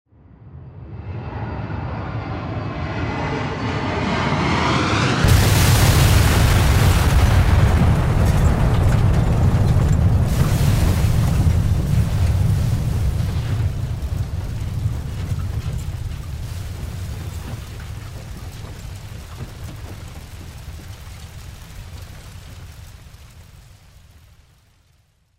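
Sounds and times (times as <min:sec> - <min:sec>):
passenger plane crashing and falling: 0:02.2 - 0:23.1.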